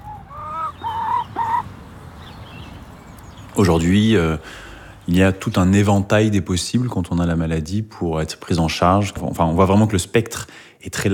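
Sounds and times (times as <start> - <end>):
hen clucking: 0.0 - 1.7
speech: 3.6 - 11.1.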